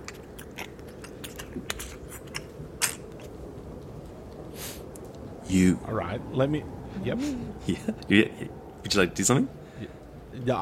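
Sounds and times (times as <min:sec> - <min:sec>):
wet crunching chewing of bones: 0:00.0 - 0:04.4
speech: 0:05.5 - 0:10.6.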